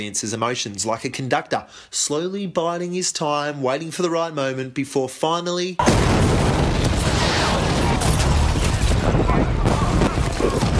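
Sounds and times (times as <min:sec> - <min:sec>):
speech: 0:00.0 - 0:06.7
loud bomb explosion in a film: 0:05.8 - 0:10.7
sustained roar of rumbling debris and crackling: 0:05.8 - 0:10.7.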